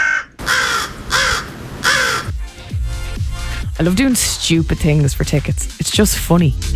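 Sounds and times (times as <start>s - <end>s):
crows cawing: 0.0s - 2.4s
softer lower crow croaks: 0.4s - 2.3s
speech: 3.8s - 6.7s.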